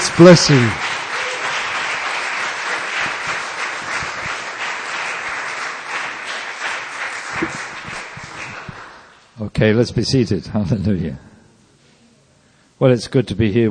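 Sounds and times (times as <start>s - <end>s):
large audience applauding: 0.0s - 9.2s
speech: 0.2s - 0.8s, 9.6s - 11.3s, 12.8s - 13.6s.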